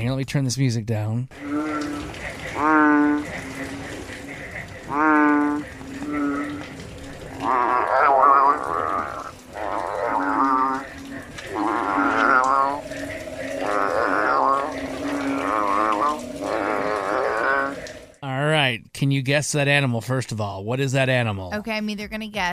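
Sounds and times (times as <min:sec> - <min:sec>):
speech: 0:00.0 - 0:01.6, 0:02.6 - 0:03.4, 0:19.2 - 0:22.5
two bellowing frogs fighting in rain: 0:01.3 - 0:18.2.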